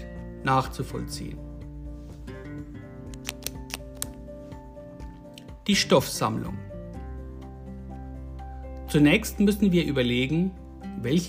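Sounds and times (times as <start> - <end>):
speech: 0.4 - 1.5, 5.7 - 6.7, 8.9 - 11.2
ballpoint pen clicks: 3.1 - 4.2.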